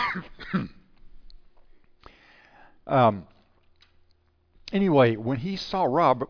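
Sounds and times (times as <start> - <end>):
person coughing: 0.0 - 0.9
speech: 0.2 - 0.8, 2.9 - 3.3, 4.7 - 6.2.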